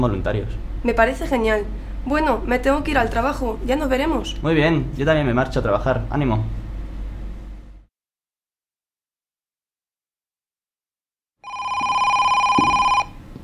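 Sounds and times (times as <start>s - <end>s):
speech: 0.0s - 6.6s
telephone electronic ring: 11.4s - 13.2s.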